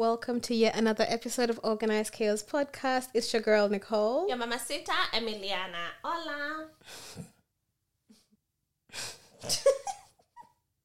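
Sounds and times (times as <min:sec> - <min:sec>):
speech: 0:00.0 - 0:07.3, 0:08.9 - 0:10.0
heavy exhausted breathing: 0:06.8 - 0:07.4, 0:08.9 - 0:09.5.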